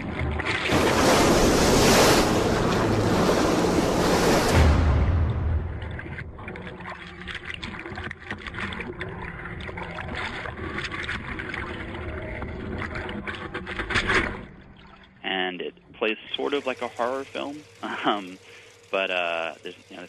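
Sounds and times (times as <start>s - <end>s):
water sloshing: 0.0s - 15.2s
commercial fishing boat engine rumbling at sea: 0.0s - 20.0s
ocean waves crashing and surging: 0.7s - 5.9s
gusts of wind buffeting: 0.7s - 6.2s
speech: 16.7s - 20.0s.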